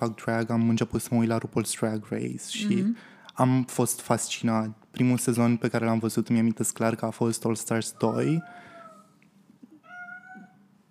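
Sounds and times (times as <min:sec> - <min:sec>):
speech: 0:00.0 - 0:08.7
cat meowing: 0:09.8 - 0:10.6.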